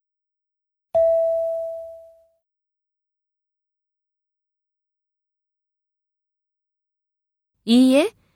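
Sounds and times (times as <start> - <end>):
prompt tone bell-like chime: 1.0 - 2.4
speech: 7.6 - 8.2.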